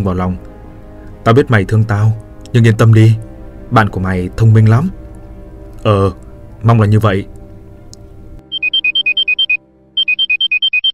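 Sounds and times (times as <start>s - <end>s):
speech: 0.0s - 0.5s, 1.2s - 5.0s, 5.8s - 7.4s
alarm clock ringing with rapid electronic beeps: 8.5s - 10.9s.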